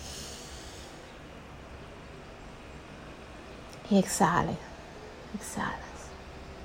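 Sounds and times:
long deep inhale through the nose during a guided breathing exercise: 0.0s - 1.2s
speech: 3.9s - 4.7s, 5.4s - 5.9s.

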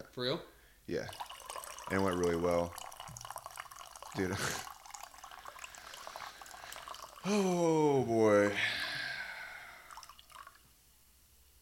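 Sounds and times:
speech: 0.0s - 1.2s, 1.9s - 2.8s, 4.2s - 4.7s, 7.2s - 8.8s
water pouring into a glass: 0.9s - 10.7s
water drips and splashes: 1.0s - 7.3s, 9.8s - 10.6s.

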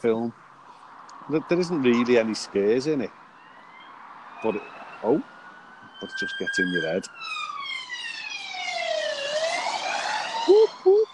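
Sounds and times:
speech: 0.0s - 0.5s, 1.3s - 3.2s, 4.4s - 5.3s, 6.0s - 7.5s
police or ambulance siren wailing as it passes: 3.4s - 11.1s.

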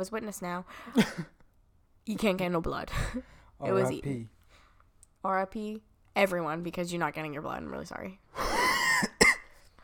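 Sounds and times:
speech: 0.0s - 1.4s, 2.1s - 4.4s, 5.2s - 8.2s
person with a month-long cough coughing harshly: 8.5s - 9.6s.

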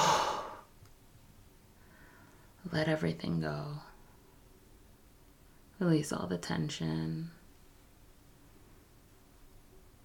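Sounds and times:
long breath exhaled through the mouth during a guided breathing exercise: 0.0s - 0.7s
speech: 2.7s - 3.9s, 5.8s - 7.4s.

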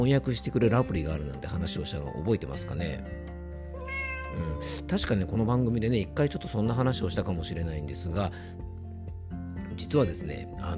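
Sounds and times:
speech: 0.0s - 3.3s, 4.3s - 8.7s, 9.9s - 10.7s
cat meowing: 3.7s - 4.8s.

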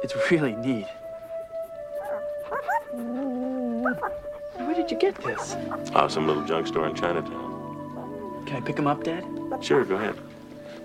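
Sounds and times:
speech: 0.0s - 1.0s, 2.9s - 7.5s, 8.4s - 10.3s
dog howling low and drawn-out: 1.4s - 6.5s, 7.6s - 8.5s
dog whimpering and whining: 2.0s - 6.0s, 7.8s - 8.4s, 9.5s - 9.7s.

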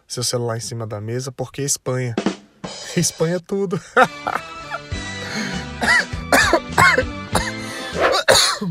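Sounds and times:
speech: 0.1s - 2.3s, 3.0s - 4.6s, 5.8s - 7.2s
person laughing: 3.7s - 5.5s
person coughing in a fit with throat clearing: 5.8s - 8.6s.

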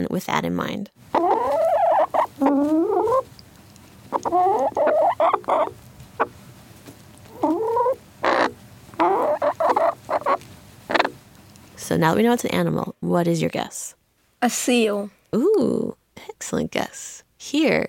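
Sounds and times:
speech: 0.0s - 1.3s, 11.9s - 17.8s
chickens clucking: 1.1s - 11.8s.

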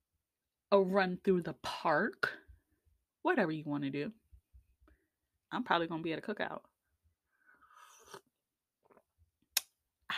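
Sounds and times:
speech: 0.7s - 2.4s, 3.2s - 4.2s, 5.5s - 6.7s
slurping sip of a drink: 7.6s - 9.1s.

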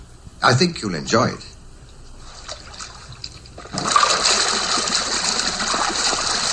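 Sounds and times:
speech: 0.4s - 1.5s
whirlpool bath switching on: 2.2s - 6.5s
whirlpool bath water bubbling and churning: 2.2s - 6.5s.

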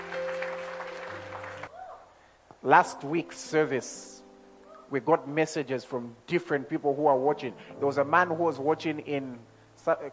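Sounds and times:
crowd applause during a service: 0.0s - 1.7s
speech: 2.6s - 4.2s, 4.9s - 10.1s.

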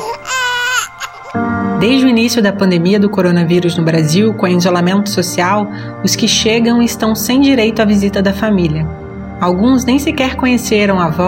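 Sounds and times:
newborn baby crying at birth: 0.0s - 1.4s
speech: 1.4s - 11.2s.

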